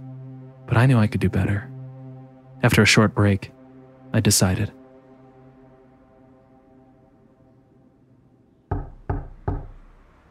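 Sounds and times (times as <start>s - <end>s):
speech: 0.7s - 1.7s, 2.6s - 4.8s
firm knocks on a door: 8.7s - 9.8s.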